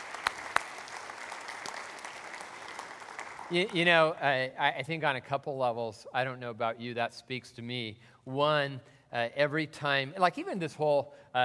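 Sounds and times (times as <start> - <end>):
crowd clapping: 0.0 - 4.1
speech: 3.5 - 11.4.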